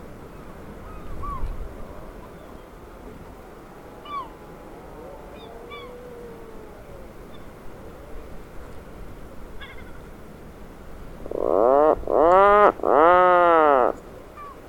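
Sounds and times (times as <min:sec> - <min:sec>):
steady background hiss: 0:00.0 - 0:14.6
Atlantic puffin giving a loud low groaning call: 0:04.0 - 0:07.2, 0:11.2 - 0:14.0.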